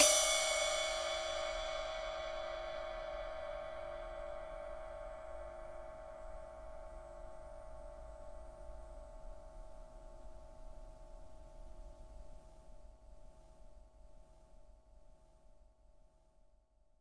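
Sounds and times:
ambient ride cymbal single shot in D: 0.0s - 6.4s.

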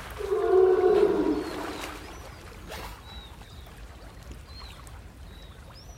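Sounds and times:
sea lion bellow, low hoarse harmonic roar: 0.2s - 2.0s
sub-Antarctic gulls giving thin high slurred calls: 0.2s - 2.2s.

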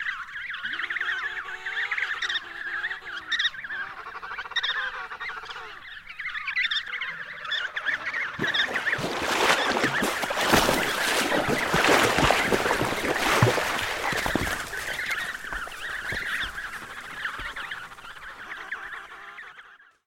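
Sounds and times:
emperor penguin chicks calling: 0.2s - 19.9s.

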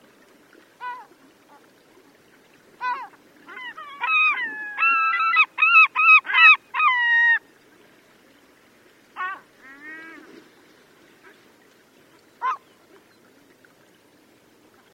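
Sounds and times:
vega gulls yelling: 2.8s - 7.4s, 9.2s - 10.2s, 12.4s - 12.8s.

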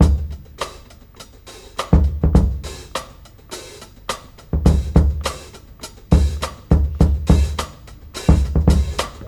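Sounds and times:
kick drum tuned to D note: 0.0s - 0.4s, 1.9s - 2.7s, 4.5s - 5.3s, 6.1s - 7.7s, 8.3s - 9.2s
104 bpm drum loop in D key: 0.0s - 9.2s.

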